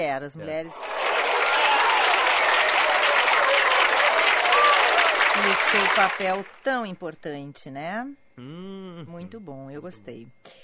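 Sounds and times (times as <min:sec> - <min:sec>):
speech: 0:00.0 - 0:01.0, 0:05.4 - 0:10.6
crowd applause: 0:00.7 - 0:06.6.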